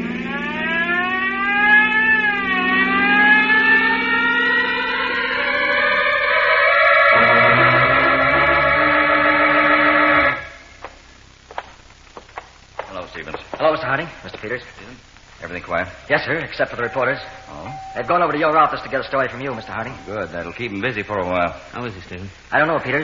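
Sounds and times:
police car siren wailing: 0:00.0 - 0:10.6, 0:16.6 - 0:21.3
speech: 0:16.1 - 0:17.4, 0:18.0 - 0:23.0.

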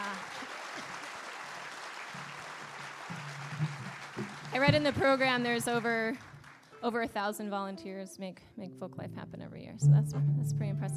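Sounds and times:
audience applause for volunteers at a folk festival: 0:00.0 - 0:06.8
speech: 0:04.6 - 0:10.9.

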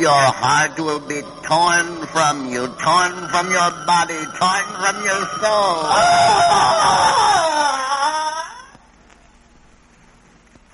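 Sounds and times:
speech: 0:00.0 - 0:07.7
man screaming: 0:04.6 - 0:08.8.

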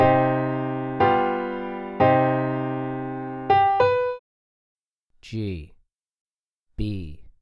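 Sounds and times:
two-note melodic minor third G3 B3 on piano for ear training: 0:00.0 - 0:04.2.

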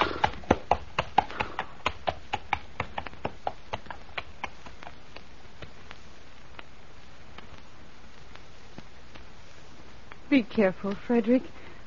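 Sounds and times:
horse hooves clip-clopping on a hard surface as the horse is led: 0:00.0 - 0:09.4
speech: 0:10.3 - 0:11.6.

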